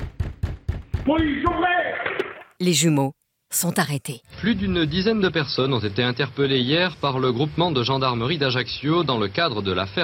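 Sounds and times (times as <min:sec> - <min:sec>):
knocking on a door: 0:00.0 - 0:01.6
speech: 0:01.1 - 0:02.0, 0:02.6 - 0:10.0.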